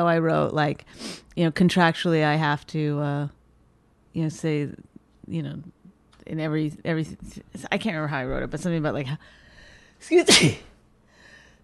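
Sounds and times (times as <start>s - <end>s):
speech: 0.0s - 3.4s, 4.2s - 9.4s, 10.0s - 10.7s
person sneezing: 10.3s - 10.7s.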